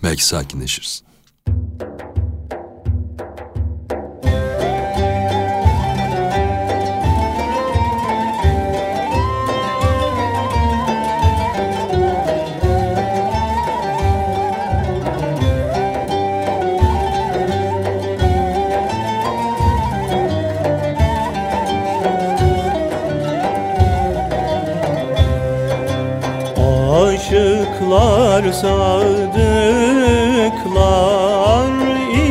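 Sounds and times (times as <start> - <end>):
speech: 0.0 - 1.1
steady instrumental accompaniment with pulsing low beat: 0.0 - 32.3
Turkish Sufi hymn sung: 26.6 - 32.3.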